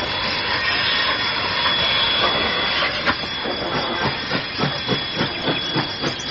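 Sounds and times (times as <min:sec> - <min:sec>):
large train passing on a rail line: 0:00.0 - 0:06.2
train wheels clattering over track joints: 0:02.2 - 0:06.2.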